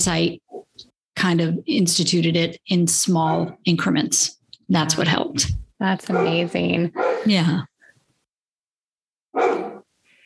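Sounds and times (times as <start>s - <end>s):
speech: 0.0s - 0.4s, 1.2s - 7.7s
dog barking at someone outside: 3.3s - 3.6s, 6.1s - 7.3s, 9.3s - 9.9s.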